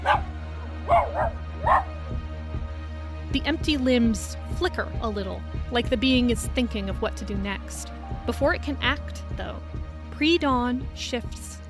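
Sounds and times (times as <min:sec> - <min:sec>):
dog barking frantically: 0:00.0 - 0:02.0
speech: 0:03.3 - 0:11.6.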